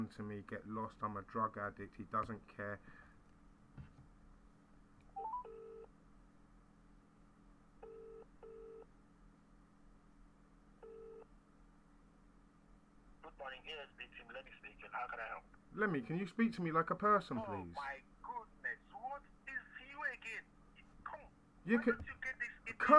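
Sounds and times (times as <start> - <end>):
speech: 0.0 - 3.0, 13.4 - 18.1, 21.6 - 22.9
low hum: 0.0 - 22.9
short electronic tones of a phone being dialed: 5.2 - 5.9.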